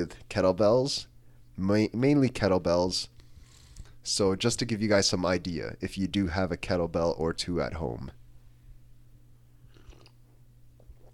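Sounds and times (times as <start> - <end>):
speech: 0.0 - 3.1, 4.0 - 8.2
low steady hum: 0.0 - 11.1
soft mouth and swallow sounds: 9.6 - 10.2
person slurping hot coffee: 9.7 - 10.2.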